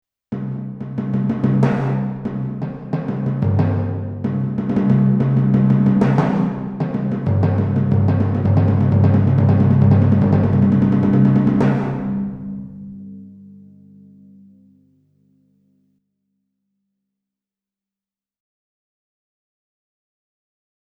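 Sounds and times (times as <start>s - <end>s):
timpani on a Roland XP-80 synthesizer: 0.4s - 13.2s.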